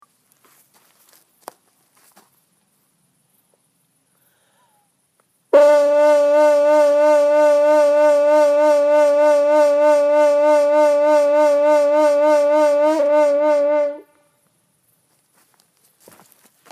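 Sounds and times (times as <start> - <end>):
trumpet vibrato made with the abdominal muscles: 5.5 - 14.2.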